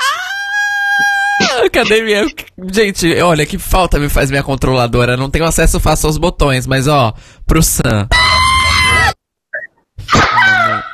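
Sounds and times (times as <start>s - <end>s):
soundboard scream sound effect: 0.0s - 1.7s, 8.1s - 9.2s, 10.1s - 10.9s
speech: 1.7s - 8.4s.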